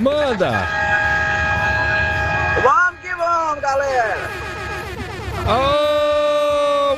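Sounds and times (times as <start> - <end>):
speech: 0.0 - 1.0, 2.6 - 2.8, 5.5 - 5.8
long vehicle horn blast: 0.4 - 6.0
low rumble: 1.0 - 6.9.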